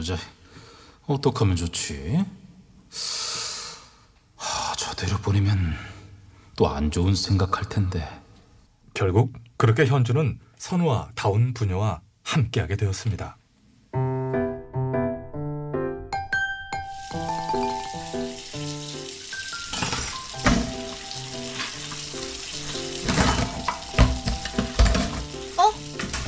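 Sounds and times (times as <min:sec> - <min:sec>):
speech: 0:00.0 - 0:00.4, 0:01.1 - 0:03.2, 0:05.0 - 0:05.9, 0:06.6 - 0:08.2, 0:09.0 - 0:13.4
melodic intro music: 0:14.0 - 0:26.0
steady rush of running water while washing dishes: 0:16.8 - 0:26.2
dishes clinking and clattering: 0:19.5 - 0:22.1, 0:22.7 - 0:26.2.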